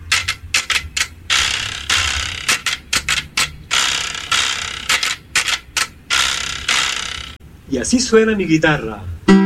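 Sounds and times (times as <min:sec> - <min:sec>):
carraca ratchet rattle noisemaker clattering: 0:00.0 - 0:07.4
speech: 0:07.7 - 0:09.3.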